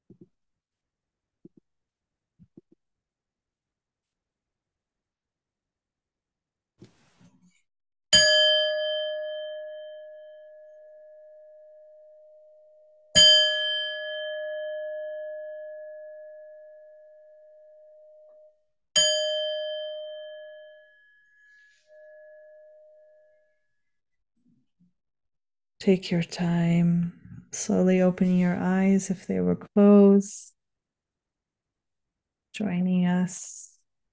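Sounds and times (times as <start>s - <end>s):
meditation bell strikes: 8.2s - 23.4s
speech: 25.8s - 30.6s, 32.6s - 33.7s.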